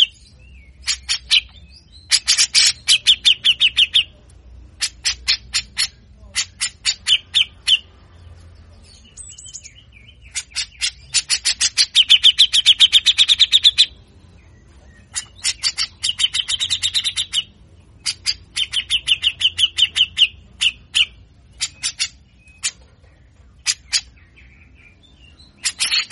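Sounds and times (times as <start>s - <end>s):
grey-cheeked bulbul rasping song in buzzy pulses: 0.0s - 26.1s.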